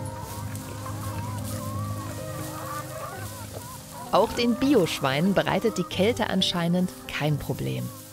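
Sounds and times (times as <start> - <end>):
chickens clucking and cackling: 0.0 - 6.6
speech: 4.1 - 8.0.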